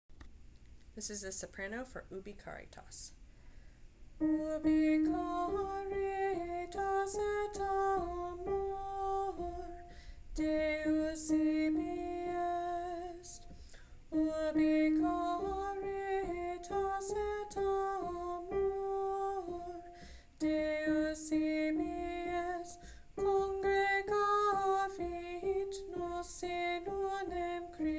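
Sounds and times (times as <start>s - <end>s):
soprano singing a choral piece: 4.2s - 27.9s.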